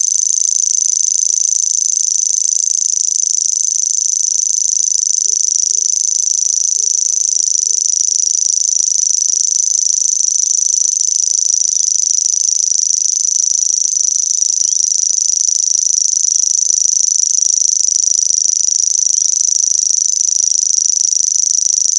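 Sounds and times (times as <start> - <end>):
grasshopper song: 0.0 - 21.8.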